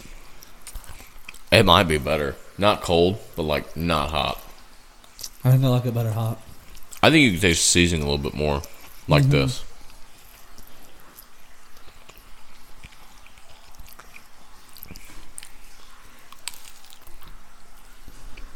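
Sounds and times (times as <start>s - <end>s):
biting and chewing a bratwurst as its casing tears: 0.0s - 1.5s, 4.0s - 5.4s, 6.4s - 7.1s, 7.9s - 18.5s
speech: 1.6s - 4.5s, 5.4s - 6.4s, 7.0s - 9.7s.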